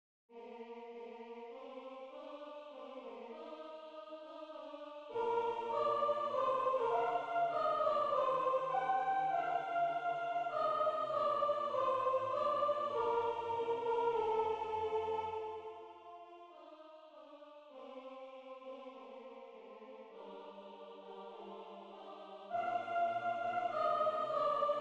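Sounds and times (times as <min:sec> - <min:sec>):
soprano voice: 0:05.1 - 0:15.5, 0:21.0 - 0:24.7.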